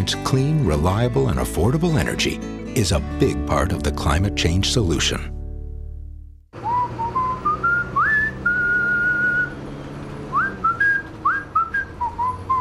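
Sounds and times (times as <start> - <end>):
speech: 0.0 - 5.4
person whistling a bright bouncy song melody: 6.6 - 9.6, 10.3 - 12.5.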